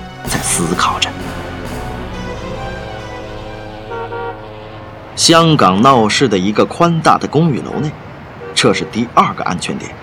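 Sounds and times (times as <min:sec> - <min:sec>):
speech: 0:00.6 - 0:01.5, 0:05.2 - 0:08.0, 0:08.6 - 0:10.0
car horns honking in city traffic: 0:01.2 - 0:09.0.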